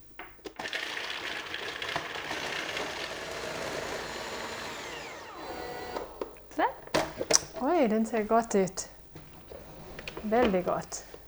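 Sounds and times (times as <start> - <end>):
blender puréeing sun-dried tomatoes, garlic and salt: 0.4 - 7.6
speech: 7.6 - 8.9, 10.3 - 11.1.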